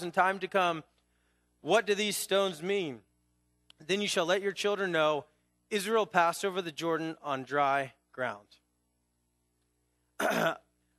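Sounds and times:
speech: 0.0 - 0.9, 1.6 - 3.1, 3.8 - 8.6, 10.2 - 10.6
throat clearing: 10.2 - 10.8.

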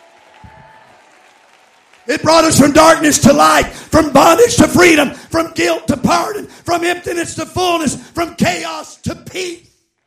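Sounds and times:
soft crowd applause: 0.0 - 5.2
speech: 2.1 - 9.7.

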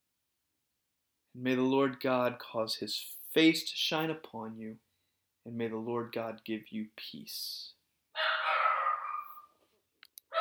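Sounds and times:
speech: 1.4 - 4.8, 5.5 - 8.3
dog giving a long drawn-out bark: 8.2 - 9.5.

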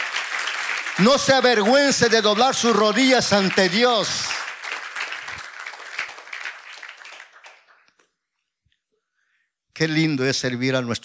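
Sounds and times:
congregation applauding: 0.0 - 8.1
speech: 1.0 - 4.4, 9.8 - 11.0.

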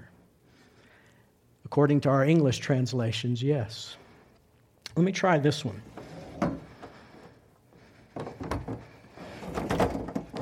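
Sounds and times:
speech: 1.8 - 4.0, 5.0 - 5.9
chairs being dragged and shifted: 5.8 - 7.4, 8.1 - 10.4
wooden knocks and scrapes: 5.9 - 7.0, 8.1 - 10.4.

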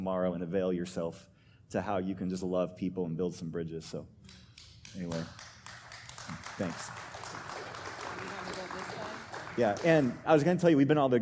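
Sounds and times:
speech: 0.0 - 5.5, 6.3 - 7.1, 9.6 - 11.1
crowd applauding: 4.6 - 10.4.

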